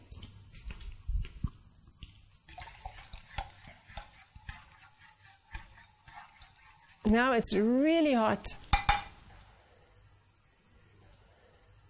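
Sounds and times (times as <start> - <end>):
scrapes and taps of stirring a hot lye solution: 2.0 - 7.8, 8.4 - 9.4
speech: 7.1 - 8.6.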